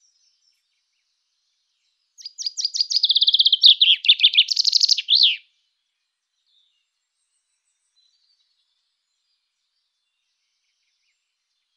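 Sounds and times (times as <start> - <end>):
Common chaffinch singing a rattling series of bright notes: 2.2 - 5.4.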